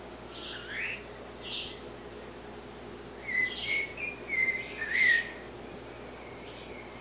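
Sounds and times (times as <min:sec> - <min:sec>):
blue-bellied parrot song with soft notes and bright whistled notes: 0:03.2 - 0:05.4.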